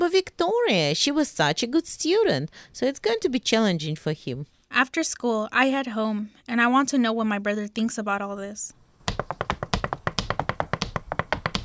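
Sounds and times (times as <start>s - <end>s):
speech: 0.2s - 9.4s
sharp knocking on a door: 9.1s - 11.6s.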